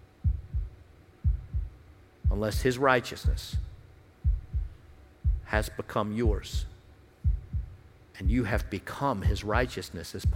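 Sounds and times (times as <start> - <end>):
faint hum: 0.0 - 10.3
deep heartbeat in a lub-dub rhythm: 0.2 - 10.3
speech: 2.3 - 3.7, 5.5 - 6.7, 8.2 - 10.3.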